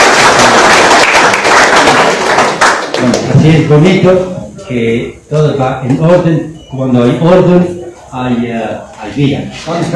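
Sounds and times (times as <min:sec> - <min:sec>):
crowd applauding: 0:00.0 - 0:03.3
speech: 0:03.4 - 0:09.9.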